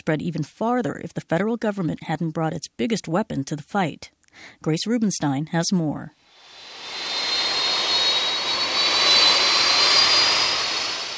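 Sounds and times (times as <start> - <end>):
speech: 0.0 - 6.2
DC-10 jumbo jet firefighting air tanker flying overhead during a wildfire: 6.3 - 11.1.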